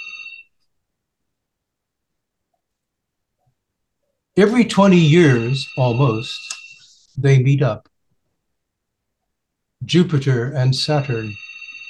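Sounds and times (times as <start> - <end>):
electronic phone ring: 0.0 - 0.6, 4.6 - 7.0, 10.8 - 11.8
speech: 4.4 - 6.6, 7.2 - 7.9, 9.8 - 11.5.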